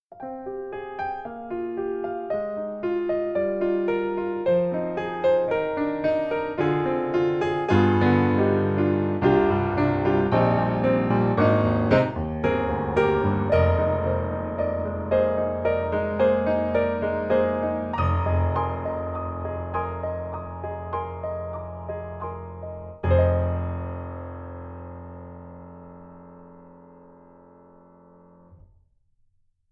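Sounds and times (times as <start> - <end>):
piano in a small auditorium: 0.0 - 28.8.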